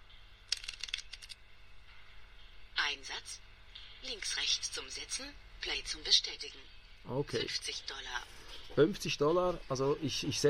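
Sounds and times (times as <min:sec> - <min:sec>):
quiet steady low casino background ambience in a video game: 0:00.0 - 0:10.4
card shuffling in video game casino ambience: 0:00.5 - 0:01.4
speech: 0:03.0 - 0:10.4.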